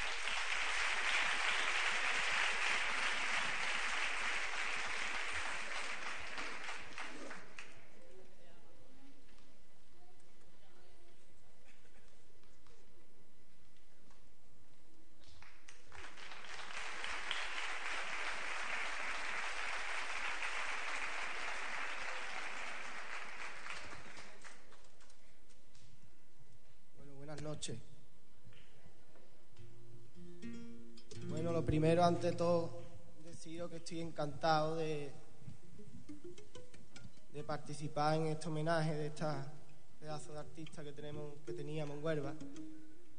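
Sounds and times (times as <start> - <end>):
crowd applauding: 0.0 - 7.9, 15.3 - 25.3
speech: 27.4 - 27.9, 31.6 - 32.8, 33.4 - 35.2, 37.4 - 42.8.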